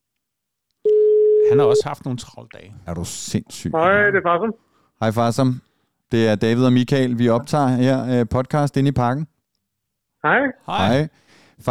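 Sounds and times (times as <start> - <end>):
telephone ringing tone on outgoing call: 0.9 - 1.8
speech: 1.5 - 9.3, 10.2 - 11.7.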